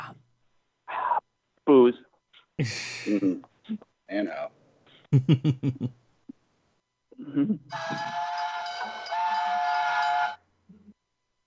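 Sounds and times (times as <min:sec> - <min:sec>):
speech: 0:01.7 - 0:06.0, 0:07.2 - 0:08.2
laughter: 0:05.2 - 0:05.9
loud train whistle blast with a breathy chord: 0:07.7 - 0:10.4.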